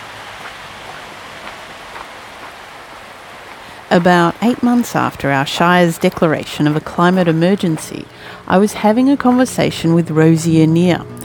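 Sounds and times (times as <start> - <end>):
steady rain falling: 0.0 - 11.2
speech: 3.9 - 11.2.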